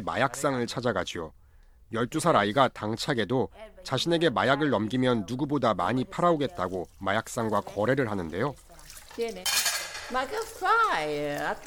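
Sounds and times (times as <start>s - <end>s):
speech: 0.0s - 11.6s
dishes and cutlery clinking while washing up: 9.3s - 11.6s.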